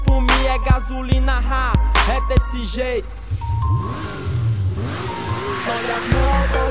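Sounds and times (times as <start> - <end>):
speech: 0.6 - 5.0, 5.6 - 6.6
sport motorcycle engine revving: 3.0 - 6.6.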